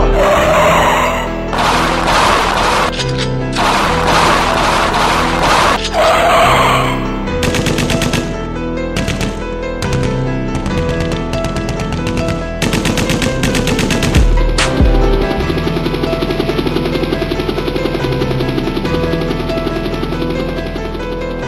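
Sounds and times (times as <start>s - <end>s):
heavy blast: 0.1s - 7.5s
rapid bursts of automatic gunfire: 0.2s - 6.1s, 6.8s - 21.3s.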